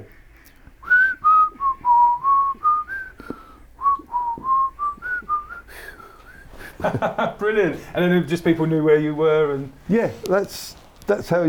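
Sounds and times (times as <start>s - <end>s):
person whistling a short melodic tune: 0.8s - 6.6s
laughter: 6.6s - 7.9s
speech: 6.8s - 11.4s.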